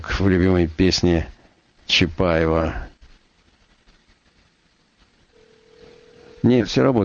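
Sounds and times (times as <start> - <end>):
speech: 0.1 - 1.3, 1.9 - 2.9, 6.4 - 7.0
telephone dial tone while calling studio: 5.4 - 6.4.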